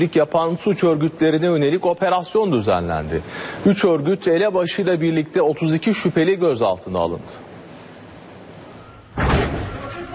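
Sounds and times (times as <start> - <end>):
speech: 0.0 - 7.4
heavy door slam during a police raid: 9.1 - 10.0.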